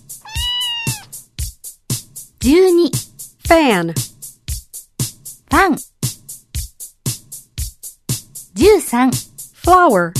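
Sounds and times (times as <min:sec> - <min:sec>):
domestic cat meowing: 0:00.2 - 0:01.1
speech: 0:02.4 - 0:04.1, 0:05.5 - 0:05.9, 0:08.6 - 0:10.1.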